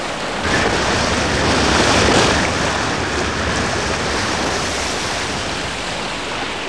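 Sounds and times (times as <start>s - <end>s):
motorboat reaching the beach through surf: 0.0s - 6.6s
surf crashing on the beach: 0.0s - 6.6s
wind: 0.0s - 6.6s.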